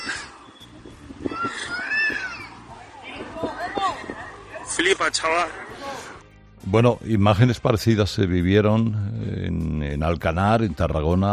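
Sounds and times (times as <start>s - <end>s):
children crying and wailing inside a trapped car: 0.0s - 4.5s
speech: 4.8s - 11.3s.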